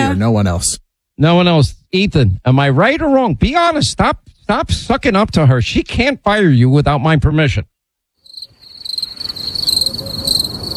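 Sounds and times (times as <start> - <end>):
speech: 0.1 - 7.7
crickets chirping: 8.2 - 10.7.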